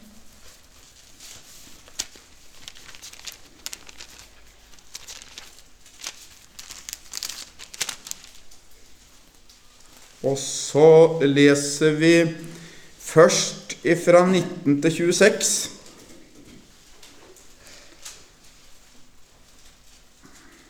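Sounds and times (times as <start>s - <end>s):
thin Bible pages rustling and flipping: 0.2s - 10.2s, 15.7s - 20.2s
speech: 10.2s - 12.5s, 13.2s - 15.7s.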